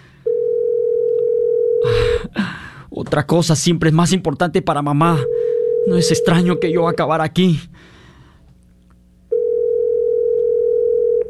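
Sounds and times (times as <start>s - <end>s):
unanswered telephone call tone: 0.3s - 1.8s, 5.2s - 7.0s, 9.3s - 11.2s
speech: 3.1s - 7.9s.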